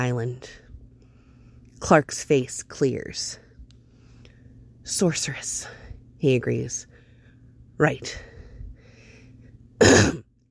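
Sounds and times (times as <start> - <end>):
speech: 0.0 - 0.6, 1.8 - 3.4, 4.9 - 6.9, 7.8 - 8.3
man clearing throat: 9.8 - 10.3.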